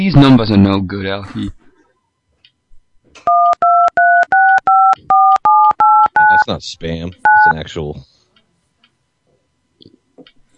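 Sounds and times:
speech: 0:00.0 - 0:01.6, 0:06.4 - 0:08.1
touch-tone phone keypad beeps while dialing a number: 0:03.3 - 0:06.5, 0:07.2 - 0:07.6.

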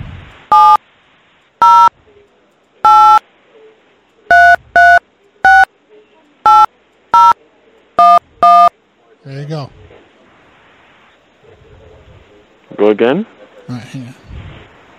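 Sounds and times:
faint hiss: 0:00.0 - 0:14.9
phone keypad tones as a caller keys in a phone number: 0:00.5 - 0:00.8, 0:01.6 - 0:01.9, 0:02.9 - 0:03.2, 0:04.3 - 0:05.7, 0:06.5 - 0:07.4, 0:08.0 - 0:08.7
speech: 0:09.3 - 0:09.8, 0:12.8 - 0:14.3.

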